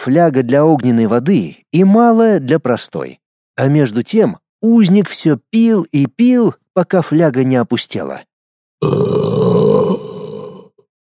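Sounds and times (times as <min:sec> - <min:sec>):
speech: 0:00.0 - 0:10.0
loud deep burp from a drinker: 0:08.8 - 0:10.9.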